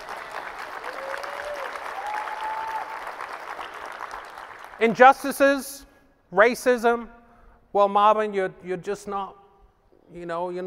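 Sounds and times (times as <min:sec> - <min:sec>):
crowd applause: 0:00.0 - 0:05.0
speech: 0:04.8 - 0:09.4, 0:10.1 - 0:10.6.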